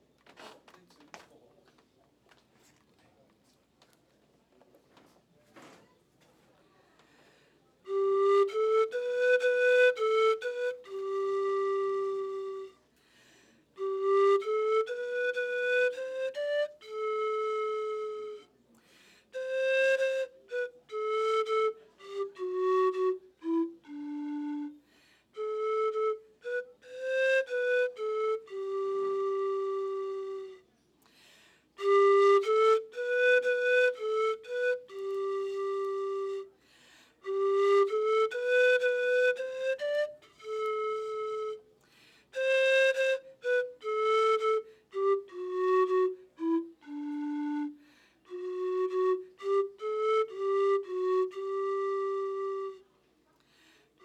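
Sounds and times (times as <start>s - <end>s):
pan flutes: 7.7s - 13.0s, 13.6s - 30.9s, 31.7s - 54.0s.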